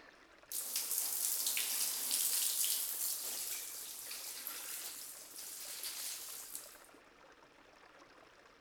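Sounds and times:
running water rinsing treatment out of hair: 0:00.5 - 0:06.8.

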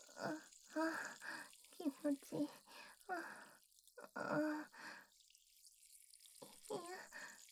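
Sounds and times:
woman sighing and moaning: 0:00.0 - 0:01.3, 0:04.0 - 0:04.7, 0:06.6 - 0:07.1
speech: 0:00.0 - 0:04.9
urine dripping and splashing down a staircase: 0:00.0 - 0:07.4.

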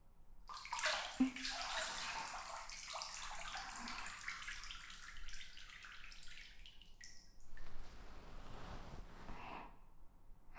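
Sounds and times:
water splashing in a bath while rinsing someone's back: 0:00.5 - 0:08.6.

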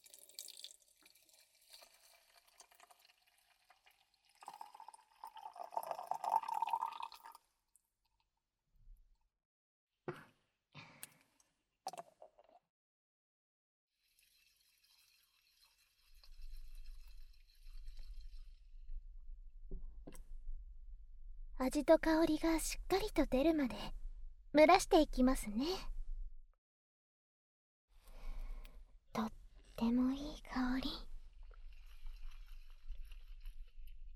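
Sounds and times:
hot water poured slowly and carefully: 0:00.0 - 0:07.4, 0:14.0 - 0:18.8, 0:31.1 - 0:34.1
speech: 0:21.6 - 0:25.9, 0:29.2 - 0:31.1.

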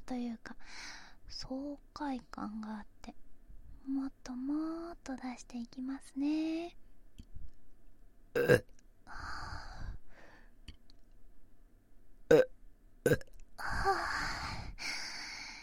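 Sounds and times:
speech: 0:00.1 - 0:03.2, 0:03.8 - 0:06.8, 0:08.4 - 0:09.4
quiet breaths: 0:00.4 - 0:01.5, 0:09.0 - 0:10.7, 0:13.5 - 0:15.6
burping: 0:08.4 - 0:08.7, 0:12.3 - 0:13.4.

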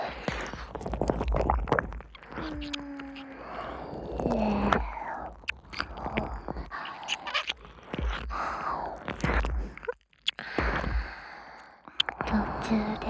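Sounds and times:
wet ear licking with slurps and smacks: 0:00.0 - 0:12.9.

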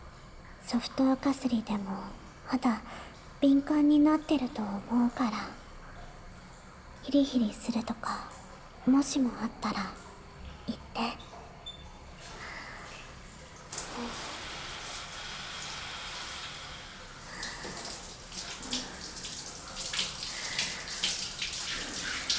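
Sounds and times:
speech: 0:00.7 - 0:05.6, 0:07.0 - 0:10.0, 0:10.7 - 0:11.2
warm water running from a tap or shower rinsing a person's back: 0:13.4 - 0:22.3.

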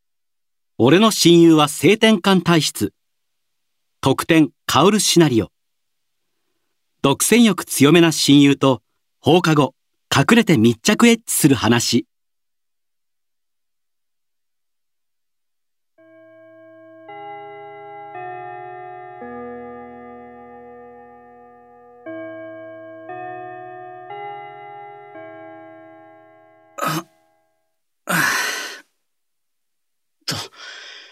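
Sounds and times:
speech: 0:00.8 - 0:03.0, 0:04.0 - 0:05.6, 0:07.0 - 0:12.1
school bell chime playing sustained tones: 0:16.0 - 0:27.7.

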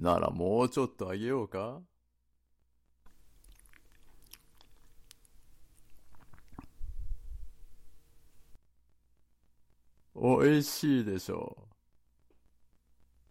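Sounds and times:
speech: 0:00.0 - 0:01.9, 0:10.2 - 0:11.7
chewing food: 0:03.0 - 0:07.0
crunchy bites: 0:03.1 - 0:06.8.

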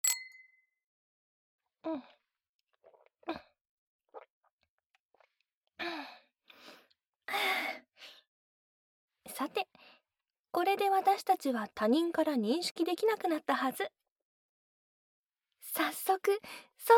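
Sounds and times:
glasses clinking in a toast: 0:00.0 - 0:00.6
speech: 0:01.8 - 0:02.2, 0:10.8 - 0:14.0, 0:15.8 - 0:16.9
breathy sighs and gasps: 0:05.8 - 0:08.2.

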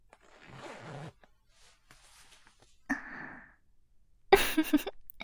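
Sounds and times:
clothing zipper being unzipped: 0:00.1 - 0:02.0
speech: 0:04.6 - 0:04.9.

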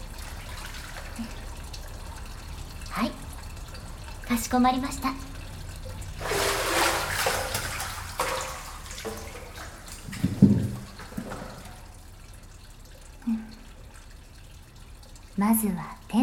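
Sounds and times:
bath water splashing as someone's back is washed: 0:00.0 - 0:04.2, 0:05.5 - 0:14.1
sharp drips or plops of bath water: 0:00.0 - 0:16.2
speech: 0:01.2 - 0:01.4, 0:04.3 - 0:05.3, 0:15.4 - 0:16.2.

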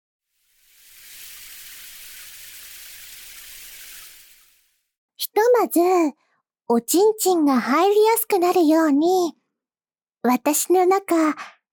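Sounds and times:
shower water spraying: 0:00.3 - 0:04.9
speech: 0:05.2 - 0:09.4, 0:10.2 - 0:11.6.

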